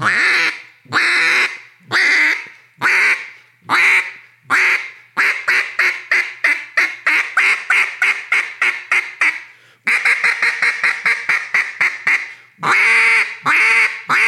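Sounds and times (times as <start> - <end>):
short-reed goose call blown in rapid honking notes: 0.0 - 14.2
caller breathing to build up air: 9.4 - 9.9, 12.2 - 12.6.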